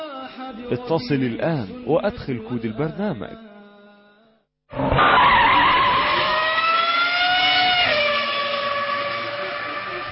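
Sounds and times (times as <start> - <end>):
speech: 0.7 - 3.5
race car tires skidding in a mobile racing video game: 4.7 - 10.0.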